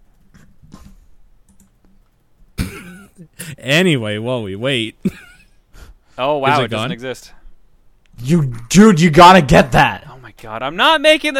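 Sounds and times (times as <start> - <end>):
typing on a computer keyboard: 0.1 - 2.2
speech: 2.8 - 5.3, 6.2 - 7.4, 8.2 - 11.3.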